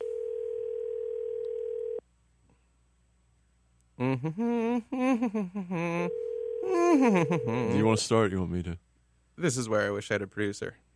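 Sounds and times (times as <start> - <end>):
steady electronic ringing tone from a phone line during an outgoing call: 0.0 - 2.0, 6.0 - 7.9
speech: 4.0 - 8.8, 9.4 - 10.8
voice with rising and falling pitch on the phone line: 5.8 - 8.0.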